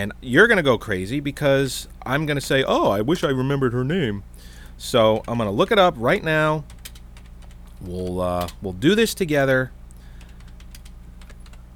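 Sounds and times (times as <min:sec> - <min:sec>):
speech: 0:00.0 - 0:06.8, 0:07.8 - 0:09.8
low hum: 0:00.0 - 0:11.7
one-handed typing on a computer keyboard: 0:05.1 - 0:05.4, 0:06.7 - 0:08.6, 0:10.2 - 0:11.6.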